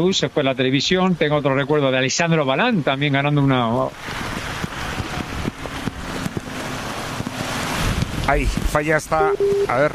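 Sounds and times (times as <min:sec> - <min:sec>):
speech: 0:00.0 - 0:04.3, 0:08.3 - 0:09.9
heavy rain pouring down: 0:03.7 - 0:09.9.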